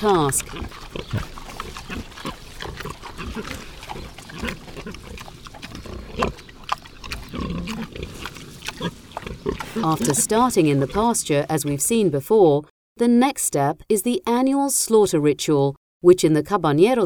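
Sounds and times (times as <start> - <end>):
speech: 0.0 - 1.3, 3.4 - 3.7, 9.8 - 17.0
Iberian pigs grunting and snorting: 0.0 - 11.1
outdoor noise: 0.0 - 12.7.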